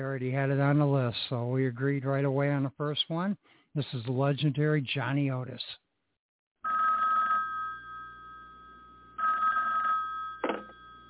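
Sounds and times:
speech: 0.0s - 5.8s
telephone bell ringing: 6.6s - 11.0s.

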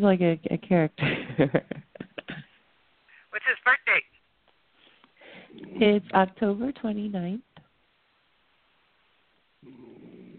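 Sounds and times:
speech: 0.0s - 1.8s, 5.5s - 7.5s
dog snoring: 9.6s - 10.3s.

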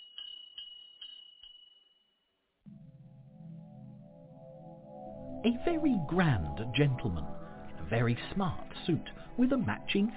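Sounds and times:
small bell on a shoemaker's shop door tinkling: 0.0s - 2.2s
low steady droning tone: 2.7s - 7.9s
speech: 5.4s - 10.1s.

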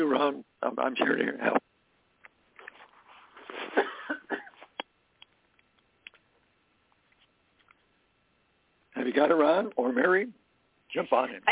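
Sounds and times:
speech: 0.0s - 1.6s, 9.1s - 11.4s
man coughing: 3.7s - 4.7s
man clearing throat: 3.8s - 4.6s.

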